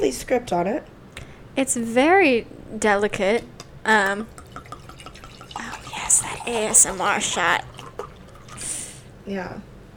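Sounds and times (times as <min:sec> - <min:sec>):
speech: 0:00.1 - 0:01.0, 0:01.6 - 0:04.4, 0:06.4 - 0:07.7, 0:09.3 - 0:09.7
sparkling rosé wine poured into a glass: 0:04.1 - 0:09.0
fizzy hiss of sparkling rosé wine: 0:04.4 - 0:09.1.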